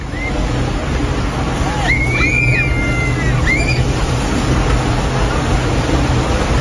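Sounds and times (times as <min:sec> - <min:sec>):
people screaming: 0:00.0 - 0:00.6, 0:01.4 - 0:04.6
ship's stern wave washing onto a bathing beach in Vlissingen: 0:00.0 - 0:06.5.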